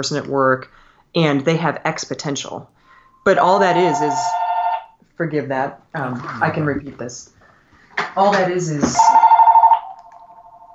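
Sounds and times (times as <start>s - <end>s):
speech: 0.0s - 4.4s, 5.2s - 7.4s, 8.0s - 9.2s
home telephone ringing with a warbling electronic trill: 3.2s - 5.0s, 8.9s - 10.7s.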